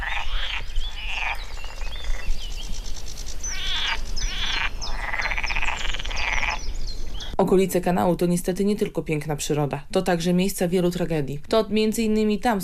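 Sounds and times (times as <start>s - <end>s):
chorus of frogs croaking by a canal: 0.0s - 7.4s
speech: 7.4s - 12.6s.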